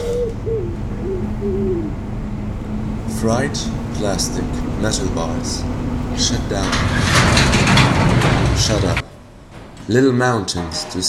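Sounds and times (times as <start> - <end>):
pigeons cooing: 0.0 - 6.2
steady rumble of outdoor noise: 0.0 - 9.8
speech: 3.2 - 7.5, 8.6 - 9.1, 9.9 - 11.0.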